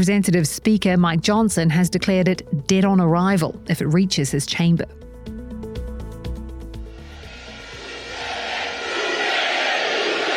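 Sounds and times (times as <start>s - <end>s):
speech: 0.0s - 5.0s
brief burst of music: 0.0s - 10.3s
large crowd cheering at election victory celebration: 7.0s - 10.3s.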